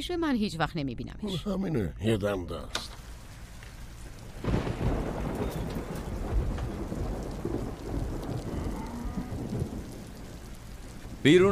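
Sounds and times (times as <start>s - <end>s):
speech: 0.0s - 3.0s, 11.2s - 11.5s
heavy rain on surfaces outside: 2.9s - 11.5s
thunder rumbling outside: 3.0s - 11.5s.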